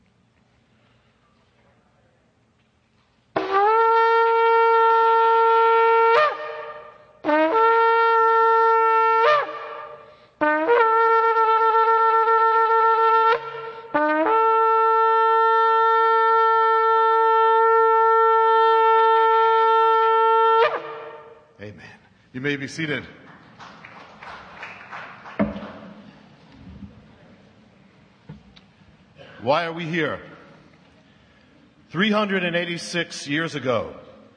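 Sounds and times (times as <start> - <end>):
shofar blasts at a sacred prayer gathering: 3.3 - 21.6
speech: 22.6 - 23.2, 29.5 - 30.3, 31.9 - 34.1.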